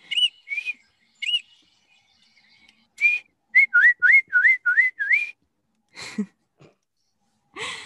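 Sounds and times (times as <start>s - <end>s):
person whistling an imitation of a Baltimore Oriole's song: 0.0s - 1.5s, 3.0s - 5.4s.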